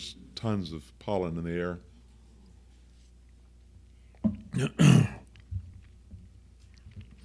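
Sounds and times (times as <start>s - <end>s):
speech: 0.0s - 1.9s, 4.6s - 5.2s
throat clearing from allergies and a congested throat: 4.5s - 5.3s.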